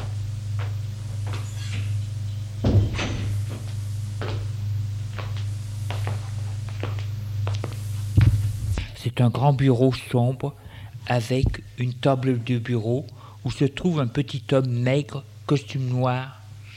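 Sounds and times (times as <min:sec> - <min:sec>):
steady low hum: 0:00.0 - 0:16.7
solid thud: 0:02.6 - 0:03.4
padded office door opening and closing: 0:02.6 - 0:03.6
speech: 0:09.2 - 0:16.4.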